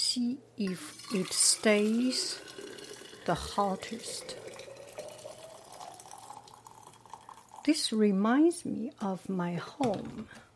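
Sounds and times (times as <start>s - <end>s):
speech: 0.2s - 2.6s, 3.2s - 4.4s, 7.6s - 10.4s
hot water pouring into a bottle: 0.8s - 7.8s.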